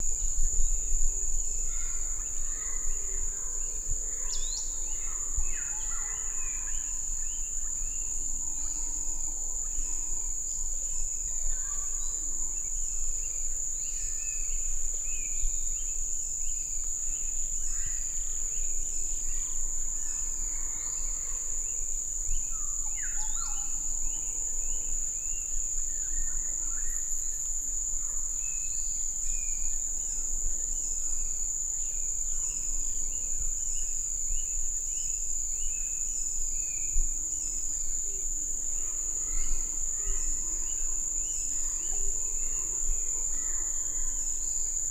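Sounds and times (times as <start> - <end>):
forest soundscape: 0.0 - 44.8.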